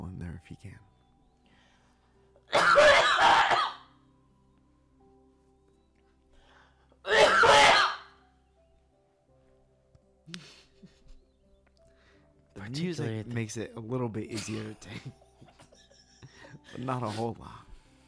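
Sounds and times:
person sneezing: 0:02.5 - 0:03.8, 0:07.1 - 0:08.0
speech: 0:12.7 - 0:15.2, 0:16.7 - 0:17.7
laughter: 0:14.3 - 0:17.3.

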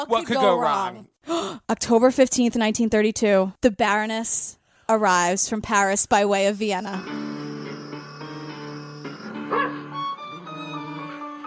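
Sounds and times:
speech: 0:00.0 - 0:07.5
steady tonal background of sustained music-like notes: 0:07.0 - 0:11.4
dog barking: 0:09.3 - 0:09.9.

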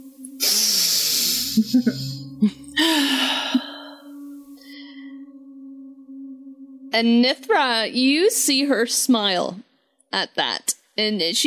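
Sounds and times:
big inhale while smelling a peppermint and ginger drink: 0:00.4 - 0:01.7, 0:02.8 - 0:05.3
speech: 0:01.6 - 0:03.0, 0:07.0 - 0:11.4.

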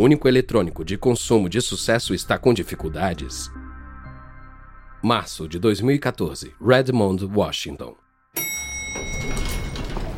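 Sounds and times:
speech: 0:00.0 - 0:03.6, 0:05.0 - 0:09.1
elevator chime: 0:08.4 - 0:10.1
elevator doors sliding open in an office building: 0:08.7 - 0:10.1.

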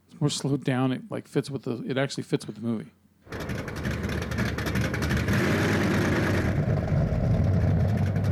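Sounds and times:
speech: 0:00.2 - 0:03.0
car engines idling: 0:03.3 - 0:08.2.

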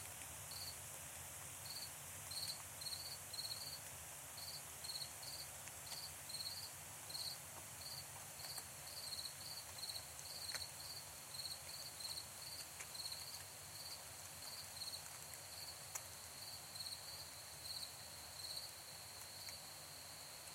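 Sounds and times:
steady high insect hum: 0:00.0 - 0:00.9, 0:01.5 - 0:20.5
soft background hiss: 0:00.0 - 0:20.5
crickets chirping in Ontario: 0:00.5 - 0:00.8, 0:01.6 - 0:03.8, 0:04.4 - 0:20.5.

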